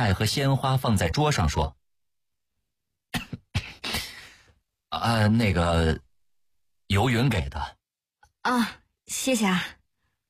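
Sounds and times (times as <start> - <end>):
speech: 0.0 - 1.8, 4.9 - 6.0, 6.9 - 7.8, 8.4 - 9.8
person coughing: 3.1 - 4.2.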